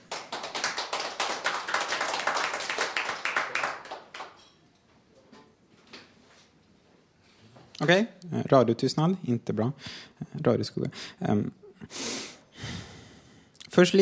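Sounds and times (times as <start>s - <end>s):
audience applause: 0.0s - 4.4s
speech: 7.8s - 12.0s, 13.8s - 14.0s.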